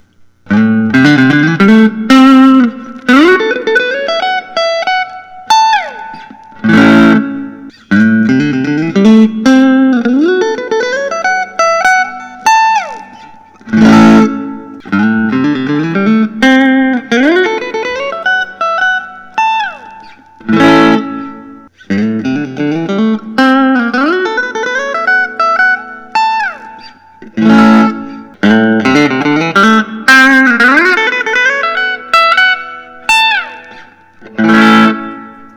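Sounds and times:
Fender Custom Shop Postmodern Stratocaster electric guitar: 0.0s - 35.5s.

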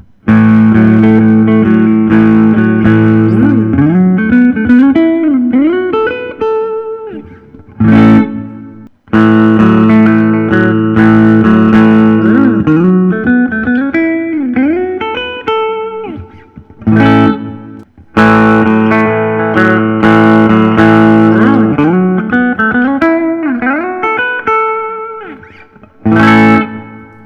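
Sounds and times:
1963 Gibson ES-335TD semi-hollow electric guitar with block inlays: 0.0s - 27.2s.

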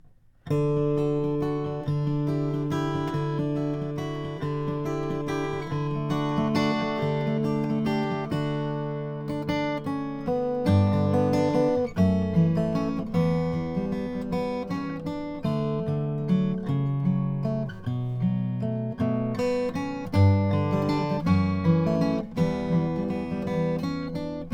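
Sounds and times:
McPherson guitar with striped ebony: 0.0s - 24.5s.

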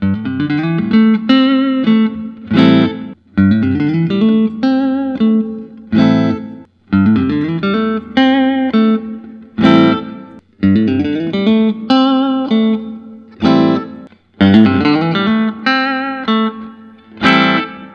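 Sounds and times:
guitar playing: 0.0s - 17.9s.

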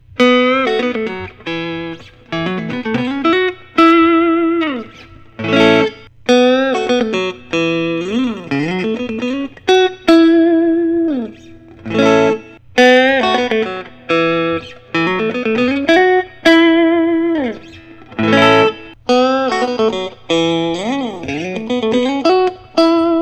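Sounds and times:
Fender Custom Shop Stratocaster electric guitar: 0.0s - 23.1s.

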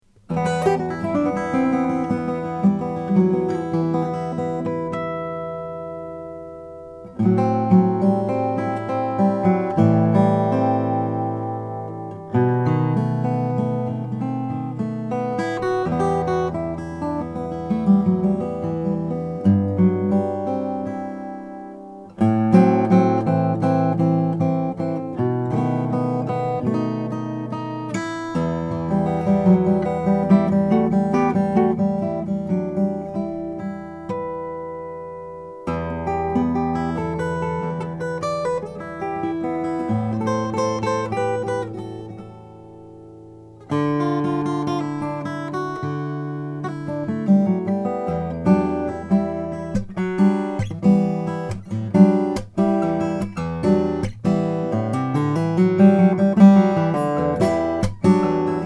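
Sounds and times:
OM cutaway acoustic guitar of Nicaraguan cocobolo: 0.0s - 58.6s.

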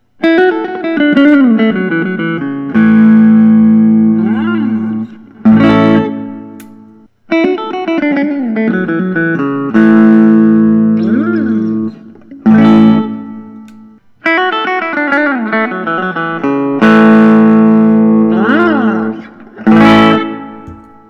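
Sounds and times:
McInturff Carolina Custom amber burst guitar: 0.0s - 21.0s.

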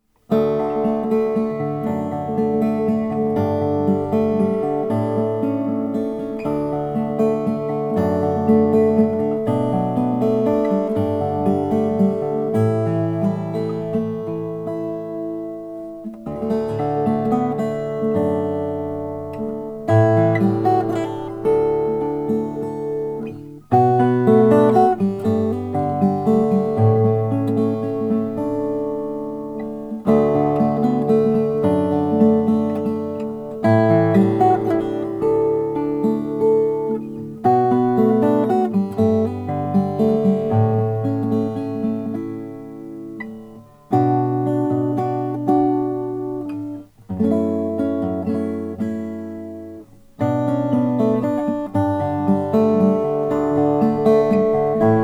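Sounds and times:
12-fret Guatemalan rosewood acoustic guitar: 0.0s - 55.0s.

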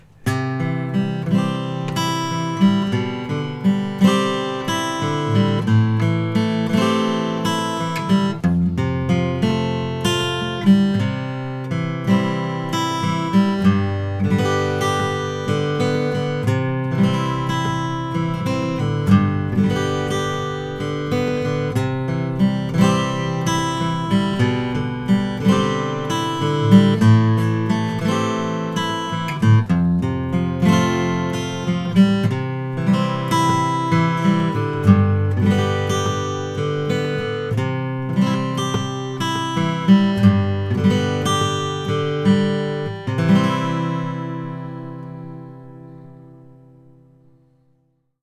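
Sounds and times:
Martin Custom 000 14 fret hide glue acoustic guitar playing: 0.0s - 48.2s.

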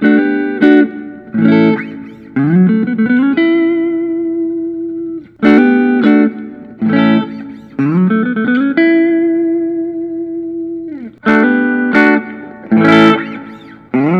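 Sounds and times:
PRS Private Stock DGT electric guitar: 0.0s - 14.1s.

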